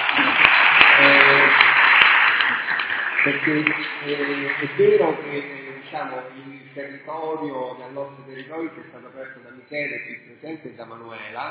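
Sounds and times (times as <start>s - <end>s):
audience applause at an academic presentation: 0.0s - 6.3s
speech: 3.2s - 11.5s.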